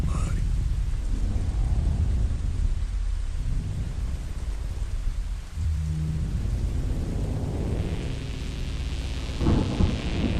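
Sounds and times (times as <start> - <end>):
steady rain hissing in a thunderstorm: 0.0 - 10.3
deep rolling thunder rumbling low: 0.4 - 10.3
sharper thunder crack: 9.4 - 10.3.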